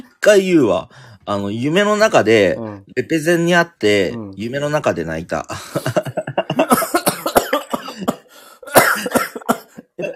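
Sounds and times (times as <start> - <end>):
speech: 0.2 - 6.8
laughter: 5.6 - 7.0
person coughing harshly: 6.5 - 10.1.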